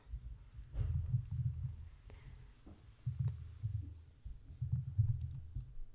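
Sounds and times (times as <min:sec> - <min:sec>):
loud typing on a computer keyboard: 0:00.1 - 0:01.8, 0:04.6 - 0:05.8.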